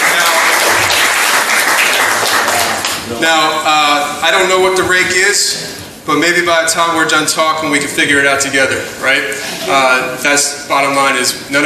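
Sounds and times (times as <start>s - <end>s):
crowd applauding: 0.0s - 3.1s
speech: 3.2s - 11.6s.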